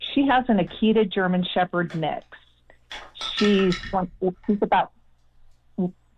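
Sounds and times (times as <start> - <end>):
speech: 0.2 - 2.4, 3.4 - 5.0, 5.8 - 6.0
axis deer antler in a golden retriever's mouth clinking on hard surfaces: 2.7 - 4.7.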